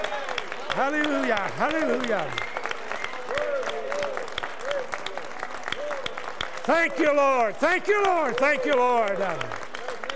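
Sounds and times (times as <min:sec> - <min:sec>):
audience clapping in worship: 0:00.0 - 0:10.1
speech: 0:00.8 - 0:02.5, 0:06.7 - 0:09.6
audience shouting and whooping in worship: 0:01.7 - 0:09.3.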